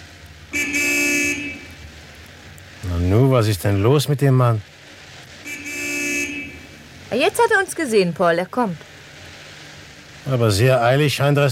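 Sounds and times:
car horn toot: 0.5 - 1.8, 5.4 - 6.8
speech: 3.1 - 4.7, 7.1 - 8.9, 10.2 - 11.5.

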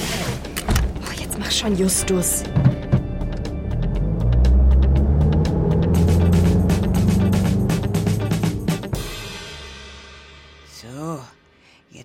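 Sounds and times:
speech: 1.4 - 2.8
car engine accelerating: 2.4 - 9.1.

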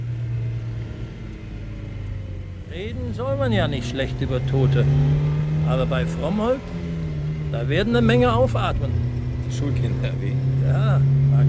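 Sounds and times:
car engine humming with deep rumble on a dirt field track: 0.0 - 11.4
car bumping along a dirt field track on a hot day: 2.6 - 11.4
speech: 2.8 - 6.9, 7.5 - 11.4.

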